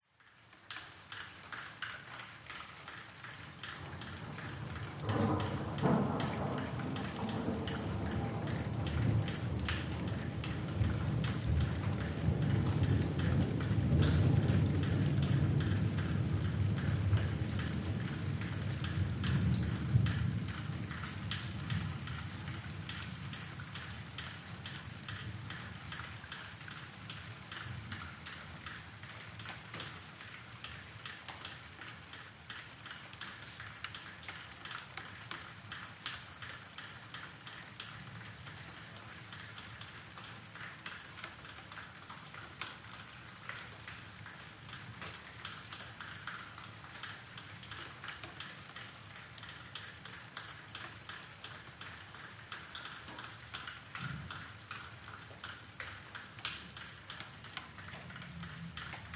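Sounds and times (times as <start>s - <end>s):
rain dripping: 0.0s - 59.1s
distant thunder rumble: 4.0s - 23.5s.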